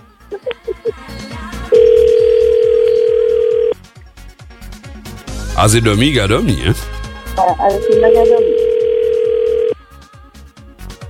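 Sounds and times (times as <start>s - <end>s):
short beeps of an outgoing telephone call: 1.8s - 3.8s, 7.7s - 9.8s
speech: 5.6s - 8.7s.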